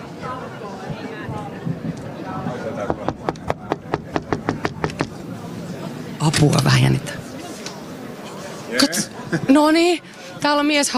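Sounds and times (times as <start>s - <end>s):
murmuring voices and chatter: 0.0s - 10.9s
knocking on a heavy red wooden door of the judges' room: 2.9s - 5.1s
speech: 6.2s - 7.2s, 8.8s - 10.9s.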